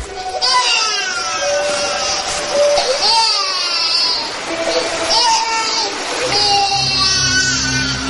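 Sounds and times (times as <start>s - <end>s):
baby crying: 0.2s - 8.0s.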